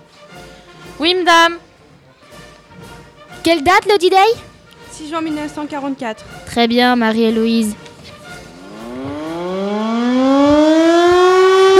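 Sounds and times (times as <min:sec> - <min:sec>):
speech: 0:01.0 - 0:01.6, 0:03.4 - 0:07.8
air-raid siren winding up and wailing: 0:08.6 - 0:11.7.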